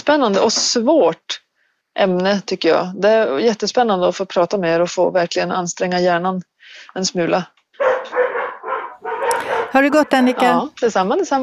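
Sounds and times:
speech: 0.1 - 1.4, 2.0 - 7.9, 9.7 - 11.4
dogs barking and yipping excitedly: 7.8 - 10.7.

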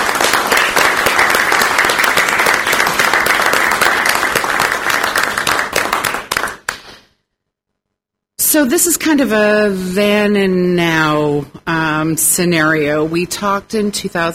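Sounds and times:
large audience applauding for veterans: 0.0 - 7.0
speech: 8.5 - 14.3.

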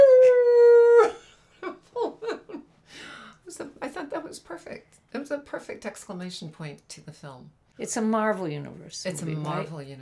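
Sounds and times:
several people outdoors under a full moon imitating a wolf howl: 0.0 - 1.2
speech: 4.7 - 10.0.

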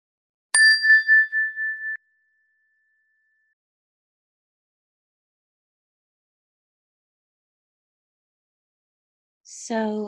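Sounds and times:
meditation chime ringing: 0.6 - 2.0
speech: 9.5 - 10.0.

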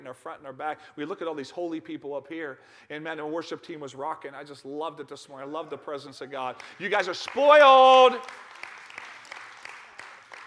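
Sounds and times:
speech: 0.1 - 8.6
sparse scattered clapping from a small part of an audience: 6.6 - 10.4.

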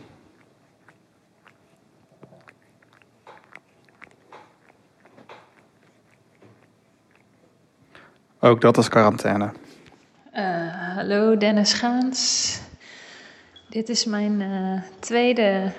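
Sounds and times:
cat grooming itself, licking its fur: 0.0 - 8.4
speech: 8.4 - 9.6, 11.0 - 12.6, 13.7 - 15.7.

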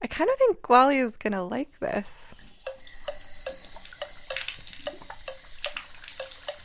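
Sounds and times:
speech: 0.2 - 2.2
warm water running into a bath for a cat: 1.8 - 6.6.

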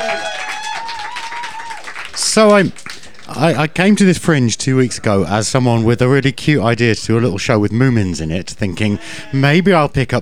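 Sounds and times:
sustained whoop over applause: 0.0 - 1.9
audience clapping and cheering: 0.0 - 3.9
speech: 2.2 - 10.2.

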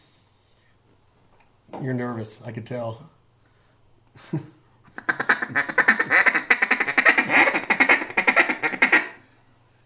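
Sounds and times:
speech: 1.8 - 3.2, 4.2 - 4.6
duck call blown with raspy quacks: 5.0 - 9.2.

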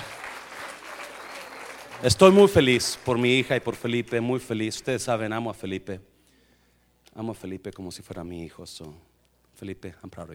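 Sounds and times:
audience applause: 0.0 - 4.4
speech: 2.0 - 6.1, 7.2 - 10.3.

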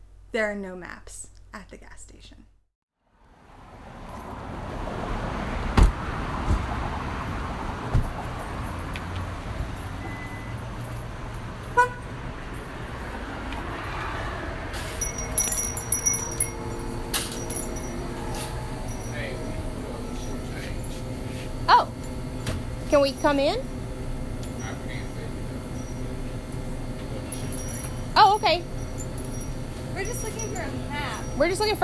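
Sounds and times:
steady hum of traffic at a gas station: 0.0 - 2.6, 3.3 - 31.8
speech: 0.3 - 2.5, 23.0 - 23.7, 28.4 - 28.7, 31.4 - 31.8
car horn toot: 11.7 - 12.1.

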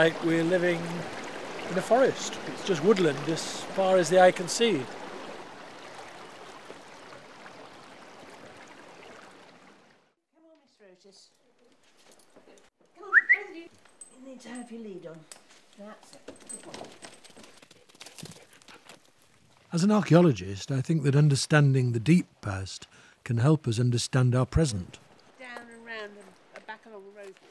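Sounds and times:
speech: 0.0 - 5.0, 14.7 - 16.9, 19.7 - 25.6
river rushing below a south-facing balcony overlooking woodland: 0.0 - 9.8
faint outdoor sounds: 0.0 - 27.4.

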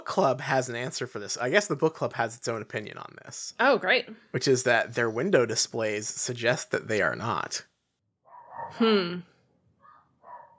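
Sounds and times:
speech: 0.1 - 7.7, 8.6 - 9.3
dog barking: 8.3 - 8.8, 9.8 - 10.5.

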